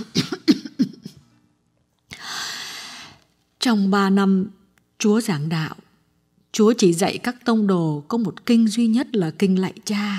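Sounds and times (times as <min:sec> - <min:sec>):
older woman coughing dry coughs: 0:00.0 - 0:01.2
speech: 0:03.6 - 0:05.8, 0:06.5 - 0:10.1.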